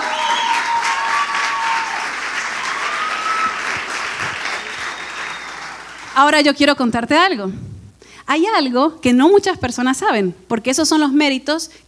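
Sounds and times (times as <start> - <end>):
audience applause with many hands clapping: 0.0 - 6.2
faint whistles and cheers: 0.0 - 6.2
speech: 6.2 - 7.6, 8.3 - 11.8.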